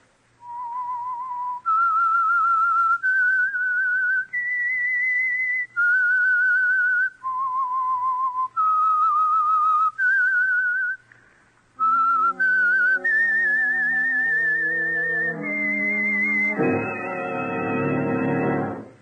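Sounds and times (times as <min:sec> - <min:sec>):
lone clear whistled theme melody: 0:00.4 - 0:11.0, 0:11.8 - 0:19.0
fuller instrumental tones: 0:11.8 - 0:19.0.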